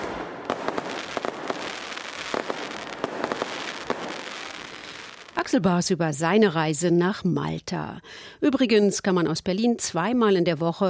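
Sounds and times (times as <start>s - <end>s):
fireworks crackling and popping at a festival: 0.0s - 5.6s
speech: 5.5s - 10.8s.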